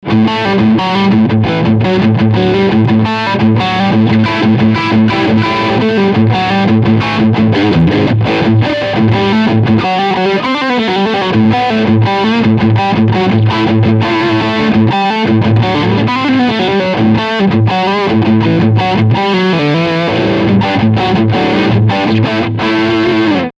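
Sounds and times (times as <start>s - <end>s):
overdriven guitar riff: 0.0s - 23.5s.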